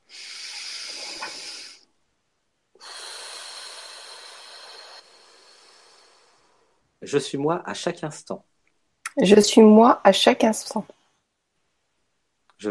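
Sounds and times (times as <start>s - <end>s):
deep breath in through the mouth and out: 0.0s - 1.9s, 2.8s - 7.0s
speech: 7.0s - 8.5s, 9.2s - 11.0s.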